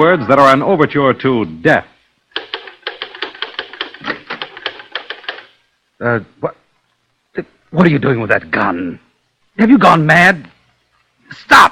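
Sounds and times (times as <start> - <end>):
speech: 0.0 - 1.9, 6.0 - 6.6, 7.4 - 9.0, 9.6 - 10.5, 11.3 - 11.7
typewriter keys clacking: 2.3 - 5.6.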